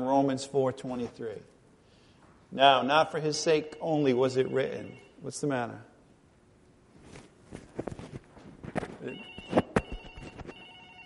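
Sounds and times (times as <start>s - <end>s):
speech: 0.0s - 1.6s, 2.5s - 5.9s, 9.0s - 9.3s
telephone ringing with a high electronic tone: 3.1s - 5.2s, 9.0s - 11.0s
footsteps moving around the room: 6.9s - 10.7s.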